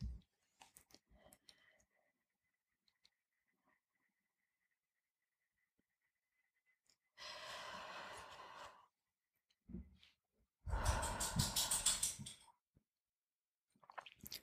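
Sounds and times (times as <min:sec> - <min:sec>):
slow deep breaths drawn in and let out: 0:07.2 - 0:08.9, 0:10.7 - 0:12.2.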